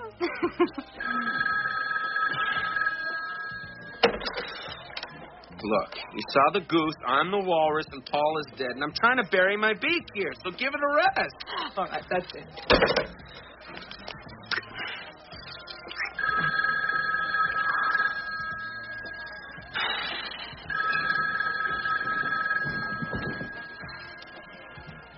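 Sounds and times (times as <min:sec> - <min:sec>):
laughter: 0:00.0 - 0:01.1
speech: 0:00.4 - 0:01.5, 0:05.6 - 0:13.2
telephone ringing with electronic trill: 0:01.0 - 0:04.7, 0:16.2 - 0:24.3.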